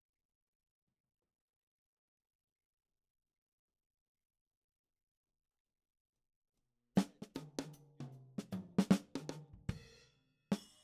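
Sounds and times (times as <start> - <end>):
snare drum playing ragtime: 7.0 - 9.9.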